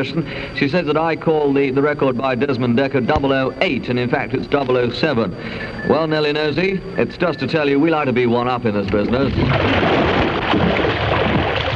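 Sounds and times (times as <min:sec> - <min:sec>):
speech: 0:00.0 - 0:10.6
water splashing as someone swims: 0:09.2 - 0:11.7.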